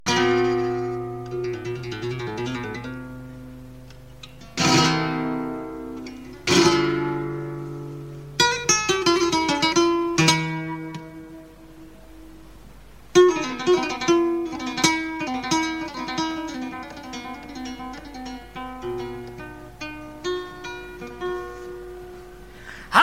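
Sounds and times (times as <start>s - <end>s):
guitar accompanying a taranta: 0.1s - 23.0s
person singing a taranta: 22.8s - 23.0s.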